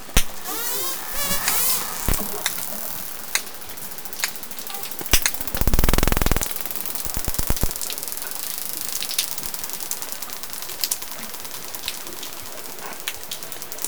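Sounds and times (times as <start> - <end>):
clicks: 0.2 - 3.5, 4.2 - 7.8.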